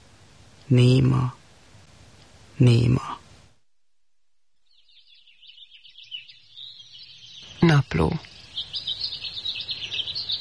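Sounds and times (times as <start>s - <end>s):
speech: 0.7s - 1.4s, 2.6s - 3.2s, 7.8s - 8.8s
blackbird calling in high warbling chirps: 4.6s - 10.4s.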